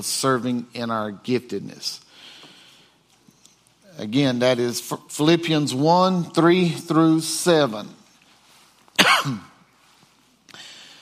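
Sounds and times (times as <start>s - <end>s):
speech: 0.0s - 2.3s, 4.0s - 8.0s, 9.2s - 9.5s
person coughing: 9.0s - 9.6s
rasping throat clearing: 9.0s - 9.6s.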